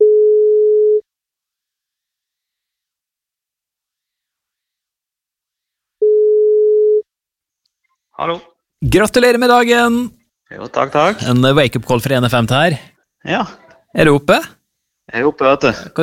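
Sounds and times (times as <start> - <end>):
telephone ringback tone while placing a call: 0.0 - 1.0, 6.0 - 7.0
speech: 8.2 - 16.0.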